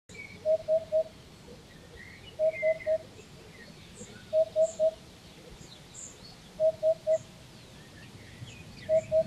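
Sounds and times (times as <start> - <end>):
hoopoe calling oup syllable: 0.2 - 5.6, 6.6 - 7.4, 8.8 - 9.2.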